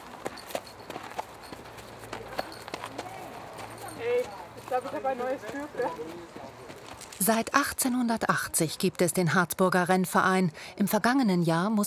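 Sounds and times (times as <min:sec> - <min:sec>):
racehorses' hooves walking while being led up to the racecourse: 0:00.0 - 0:08.2
speech: 0:04.8 - 0:06.4, 0:07.2 - 0:11.8.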